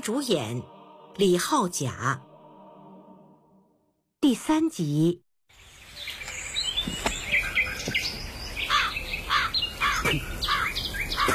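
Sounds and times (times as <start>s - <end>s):
speech: 0.0s - 2.3s, 4.2s - 5.7s
outdoor noise: 5.5s - 11.3s
crow cawing: 8.7s - 11.3s.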